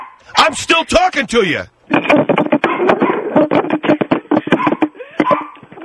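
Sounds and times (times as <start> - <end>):
dog barking heard over a phone line: 0.0 - 0.2, 2.6 - 3.3, 4.5 - 5.6
speech: 0.2 - 2.2, 2.8 - 4.0.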